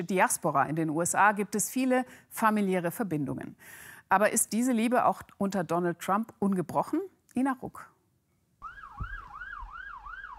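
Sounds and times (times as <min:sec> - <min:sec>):
speech: 0:00.0 - 0:07.9
police patrol car siren wailing in New York: 0:08.6 - 0:10.3.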